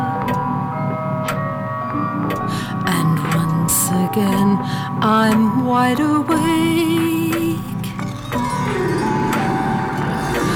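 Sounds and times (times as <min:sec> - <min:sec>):
clock downstairs chiming the quarter hour: 0:00.0 - 0:10.5
speech: 0:04.2 - 0:07.2.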